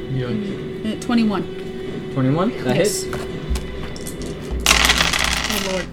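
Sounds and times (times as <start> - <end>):
speech: 0.2 - 1.6, 2.1 - 3.2
many dice clattering and tumbling across a hard table: 3.9 - 5.9.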